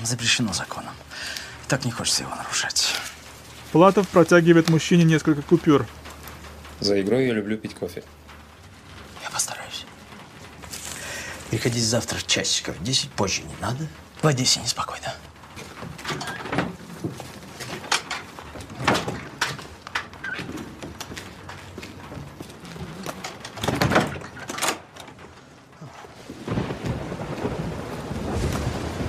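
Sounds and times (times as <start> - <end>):
speech: 0.0 - 3.1, 3.7 - 6.0, 6.8 - 8.2, 11.5 - 15.3
steady rain hissing: 0.0 - 29.0.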